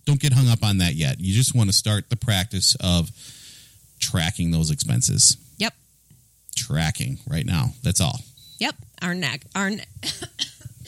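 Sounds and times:
speech: 0.1s - 3.4s, 4.0s - 5.8s, 6.6s - 10.6s
person coughing: 10.0s - 10.8s.

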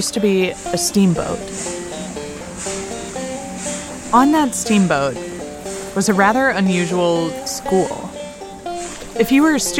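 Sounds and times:
speech: 0.0s - 1.8s, 4.1s - 5.3s, 6.0s - 8.1s, 9.2s - 9.7s
river water lapping at the shoreline: 0.0s - 9.7s
soft melodic line of sustained notes: 0.0s - 9.7s.

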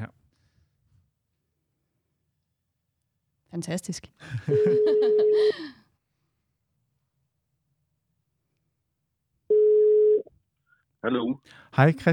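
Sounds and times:
speech: 3.6s - 5.8s, 11.0s - 12.1s
laughter: 4.2s - 5.7s
telephone ringback tone: 4.5s - 5.4s, 9.5s - 10.2s.

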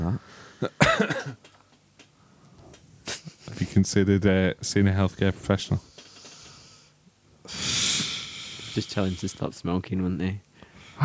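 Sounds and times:
speech: 0.6s - 1.2s, 3.8s - 5.9s, 8.8s - 11.0s
hard forceful raspy cough: 0.6s - 1.4s.

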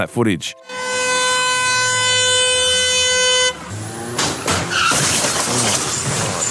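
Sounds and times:
Mitsubishi SUV tyres screeching at traffic lights: 0.7s - 6.5s
SUV crashing into a car: 1.0s - 6.5s
debris rattling from SUV crash: 4.0s - 6.5s.

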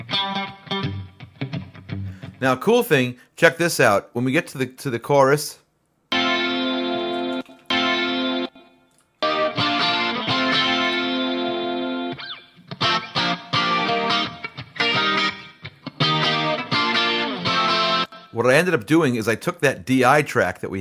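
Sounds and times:
clean electric guitar with room reverb: 0.0s - 2.4s, 6.1s - 18.4s
speech: 2.4s - 5.6s, 18.4s - 20.7s.

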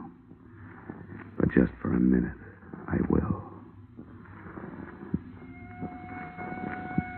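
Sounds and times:
speech: 1.6s - 3.4s
police car siren wailing: 5.4s - 7.1s.

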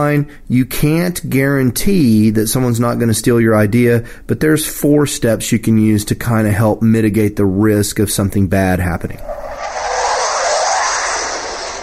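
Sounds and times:
speech: 0.0s - 9.6s
jet airplane roaring overhead: 9.2s - 11.8s.

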